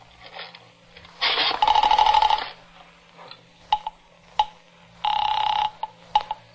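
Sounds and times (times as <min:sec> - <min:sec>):
steady buzzing telephone tone: 0:01.6 - 0:02.6, 0:05.0 - 0:06.3.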